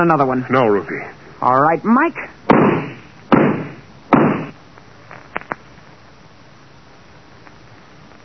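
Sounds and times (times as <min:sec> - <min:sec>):
speech: 0:00.0 - 0:02.7
sharp loud gunshots fired through a door: 0:02.5 - 0:04.6.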